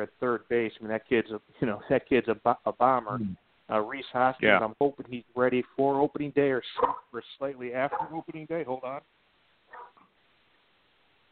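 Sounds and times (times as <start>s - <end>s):
speech: 0.0s - 9.8s
dog barking: 6.8s - 7.1s, 7.9s - 8.2s, 9.7s - 10.0s.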